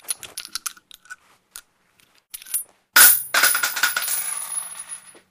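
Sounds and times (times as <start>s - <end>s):
handgun shells unloaded onto concrete: 2.4s - 5.2s.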